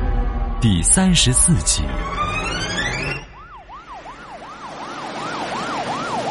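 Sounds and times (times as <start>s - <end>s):
ambulance siren arriving at a hospital: 0.1s - 6.2s
speech: 0.6s - 2.7s
ambulance vehicle noise: 1.6s - 6.2s.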